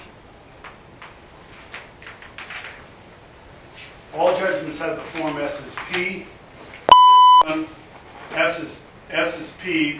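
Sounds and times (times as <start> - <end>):
speech: 4.2 - 6.4, 7.4 - 7.8, 8.4 - 9.9
electronic device beeping during a lecture: 6.9 - 7.5.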